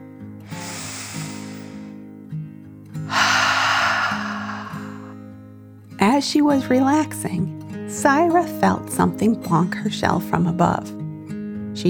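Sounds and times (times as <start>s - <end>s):
person taking a slow deep breath in and out: 0.5s - 2.0s, 3.1s - 5.2s
speech: 6.1s - 11.0s.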